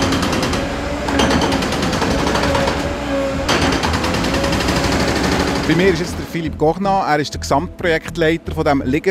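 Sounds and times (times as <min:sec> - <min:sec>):
dense loud machinery clatter with rapid mechanical rattling: 0:00.0 - 0:06.3
eight workers digging at a railway tunnel construction site: 0:00.0 - 0:06.3
speech: 0:05.7 - 0:09.0.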